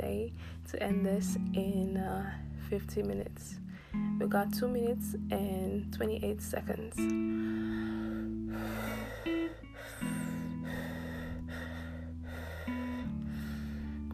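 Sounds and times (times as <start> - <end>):
speech: 0.0 - 8.8
constant low humming drone: 0.0 - 14.1
heavy breathing: 7.2 - 14.1.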